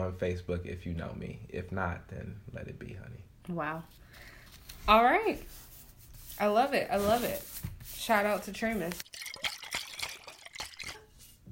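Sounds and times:
speech: 0.1 - 5.7, 6.4 - 9.2
Prosecco being poured into a glass: 9.0 - 11.2.

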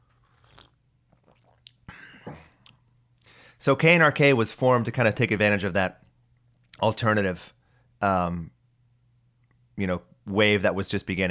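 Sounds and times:
sipping coffee: 0.0 - 1.9
swallowing: 0.0 - 2.9
speech: 3.6 - 6.0, 6.8 - 8.6, 9.8 - 11.3.

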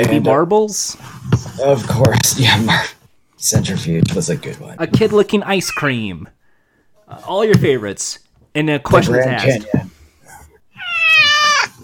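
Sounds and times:
speech: 0.0 - 6.4, 7.1 - 9.9
cat meowing loudly: 10.8 - 11.8.

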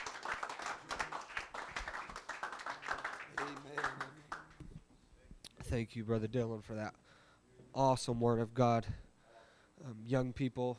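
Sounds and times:
audience clapping hands: 0.0 - 4.7
speech: 3.8 - 4.2, 5.7 - 7.0, 7.7 - 9.0, 9.8 - 10.7.

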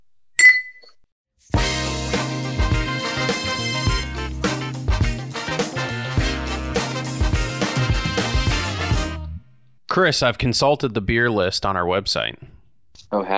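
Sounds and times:
beer glasses clinking in a toast: 0.4 - 1.0
upbeat music with a steady bass and drum groove: 1.4 - 9.4
speech: 10.0 - 12.5, 13.1 - 13.3.

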